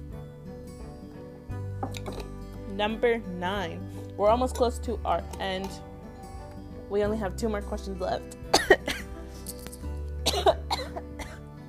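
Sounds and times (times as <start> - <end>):
speech: 1.8 - 2.2, 2.8 - 5.9, 6.9 - 8.8
person coughing: 8.5 - 9.1, 10.2 - 11.4.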